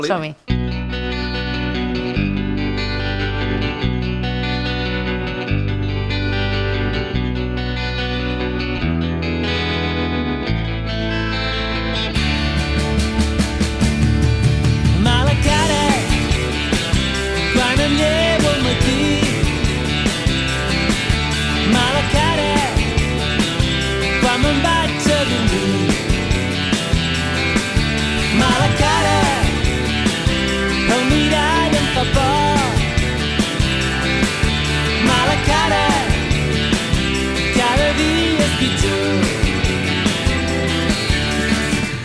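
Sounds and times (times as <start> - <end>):
speech: 0.0 - 0.5
bass-heavy groove: 0.0 - 42.0
distorted guitars: 0.0 - 42.0
recorded pop-rock song: 0.0 - 42.0
driving drums: 12.2 - 42.0.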